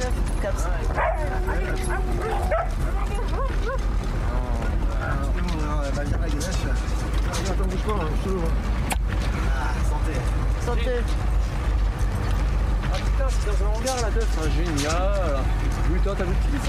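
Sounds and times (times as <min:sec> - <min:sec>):
constant noisy background: 0:00.0 - 0:16.6
dog yipping and barking: 0:00.9 - 0:03.8.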